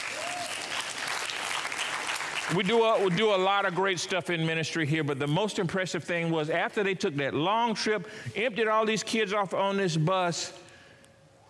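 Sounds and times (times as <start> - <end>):
audience clapping at a church ministry gathering: 0.0 - 4.0
speech: 2.5 - 10.6.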